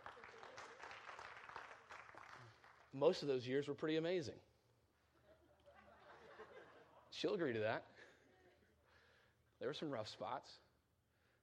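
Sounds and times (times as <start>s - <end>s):
crowd applauding: 0.0s - 2.9s
speech: 2.9s - 4.5s, 7.2s - 8.0s, 9.6s - 10.6s
laughter: 5.2s - 7.1s.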